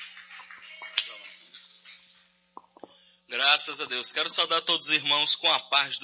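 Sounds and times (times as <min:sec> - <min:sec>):
audience clapping hands in a lively burst of applause: 0:00.0 - 0:02.1
speech: 0:03.3 - 0:06.0.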